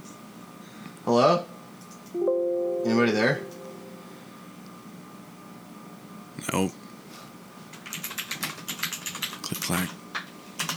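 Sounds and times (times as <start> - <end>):
speech: 1.1 - 1.4, 2.9 - 3.5
rapid typing on a mechanical keyboard: 7.7 - 9.9, 10.6 - 10.7.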